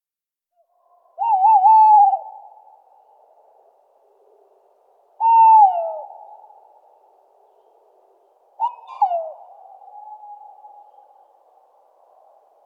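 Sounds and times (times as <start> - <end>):
tawny owl hooting in Luxembourg: 1.2 - 2.7, 5.2 - 6.7, 8.6 - 11.4.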